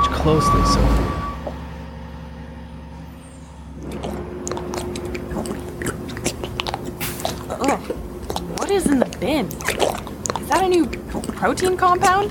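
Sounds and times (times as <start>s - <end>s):
delivery truck engine rumbling: 0.0s - 12.2s
speech: 0.2s - 1.2s, 10.7s - 12.2s
clattering and crunching of a delivery truck stopping: 3.8s - 9.0s
delivery truck air brakes hissing: 7.0s - 7.6s.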